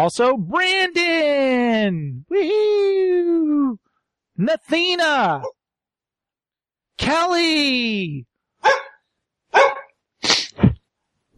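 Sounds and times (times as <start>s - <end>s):
speech: 0.0s - 3.8s, 4.4s - 5.6s, 7.0s - 8.9s
dog barking: 8.6s - 10.0s.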